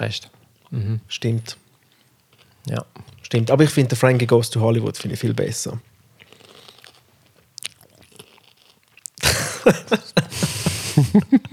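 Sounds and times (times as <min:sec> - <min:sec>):
speech: 0:00.0 - 0:01.6, 0:02.6 - 0:05.9, 0:09.7 - 0:10.3, 0:11.0 - 0:11.5
crunching of raw carrots: 0:06.2 - 0:09.2
wet chewing of raw carrots: 0:06.2 - 0:09.2
laughter: 0:09.2 - 0:11.5.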